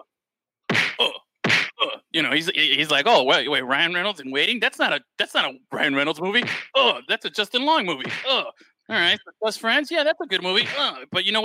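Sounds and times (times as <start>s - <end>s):
sharp loud slap sound effect: 0.7s - 1.8s, 6.4s - 6.7s, 8.0s - 8.4s, 10.6s - 11.0s
speech: 2.2s - 11.4s.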